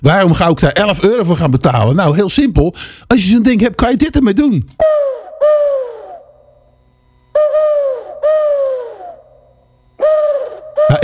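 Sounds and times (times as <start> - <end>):
speech: 0.0 - 5.0
owl calls blown on an owl-shaped owl whistle: 4.8 - 6.7, 7.3 - 11.0.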